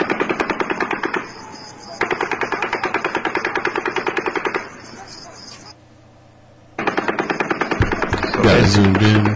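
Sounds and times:
rapid automatic gunfire: 0.0 - 1.4, 2.0 - 4.9, 6.8 - 9.3
speech: 8.7 - 9.3.

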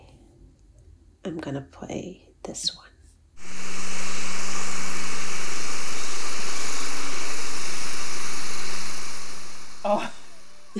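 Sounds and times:
speech: 1.2 - 2.9, 9.8 - 10.2
research vessel engine drone recorded underwater with a hydrophone: 3.4 - 10.7.

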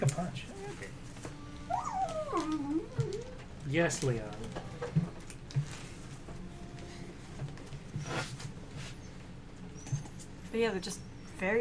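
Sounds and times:
speech: 0.0 - 3.0, 3.6 - 4.8, 10.5 - 11.5
dog whimpering: 0.5 - 4.0, 8.9 - 10.5.

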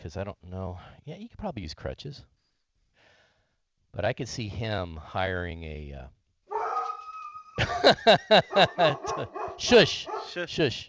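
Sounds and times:
speech: 0.0 - 2.4, 3.9 - 6.2, 7.6 - 10.8
dog barking: 6.5 - 7.4, 8.3 - 10.5
dog whining: 6.5 - 7.6, 8.5 - 10.4
laughter: 7.6 - 10.1.

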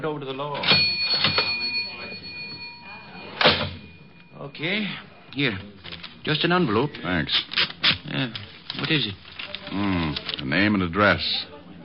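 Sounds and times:
speech: 0.0 - 1.4, 4.4 - 11.5
cash register bell ringing: 0.5 - 5.0
cash register being opened: 0.6 - 4.0.

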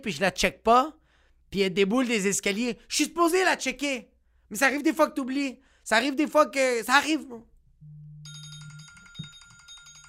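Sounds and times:
speech: 0.0 - 7.5
smartphone ringtone with bright pulsing electronic tones: 7.8 - 10.0.

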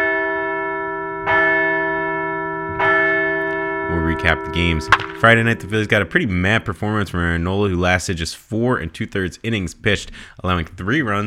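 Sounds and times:
large church bell ringing: 0.0 - 7.4
speech: 4.2 - 11.2.

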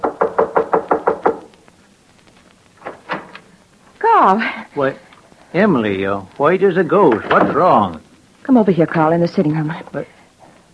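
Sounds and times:
sharp knocks on a door: 0.0 - 1.5
speech: 4.2 - 10.2.

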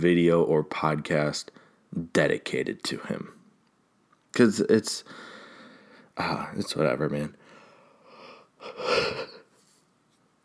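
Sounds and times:
speech: 0.0 - 3.4, 4.4 - 5.3, 6.2 - 7.4, 8.6 - 9.3
person yawning: 8.6 - 9.4.

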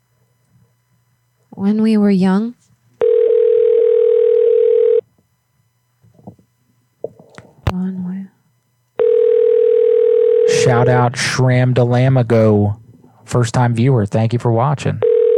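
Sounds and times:
speech: 1.6 - 2.6, 10.8 - 15.0
telephone dial tone: 3.0 - 5.0, 9.0 - 10.7, 15.0 - 15.3.

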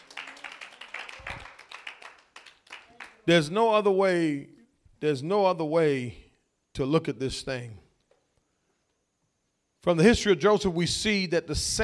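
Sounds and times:
audience clapping in praise: 0.0 - 3.3
speech: 3.2 - 6.2, 6.8 - 7.8, 9.8 - 11.8.

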